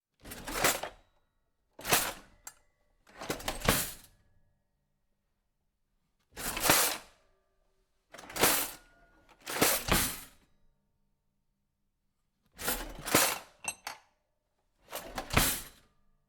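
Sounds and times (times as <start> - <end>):
kitchen drawer: 0.2 - 0.9, 1.8 - 2.3, 3.1 - 4.0, 6.4 - 7.1, 8.2 - 10.3, 12.6 - 14.1, 14.8 - 15.8.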